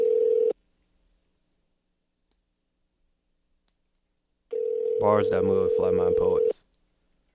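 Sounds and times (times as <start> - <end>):
outgoing phone line electronic ring tone: 0.0 - 0.5, 4.5 - 6.5
speech: 5.0 - 6.6.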